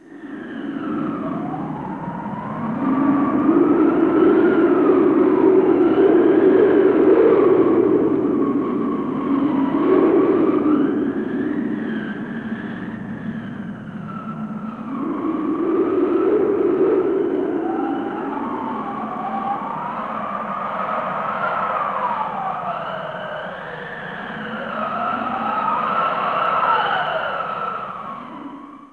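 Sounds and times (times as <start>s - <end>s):
valley wind whistling: 0.0s - 28.9s.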